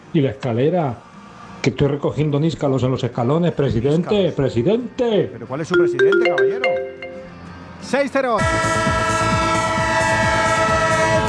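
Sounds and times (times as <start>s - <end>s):
speech: 0.1s - 6.7s, 7.8s - 9.0s
train horn drone: 8.6s - 11.2s.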